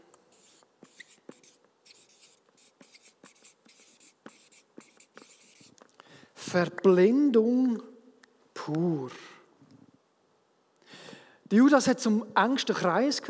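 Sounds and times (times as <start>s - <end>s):
pen scratching on paper in handwriting: 0.3s - 5.8s
speech: 6.5s - 7.9s, 8.7s - 9.2s, 11.5s - 13.2s.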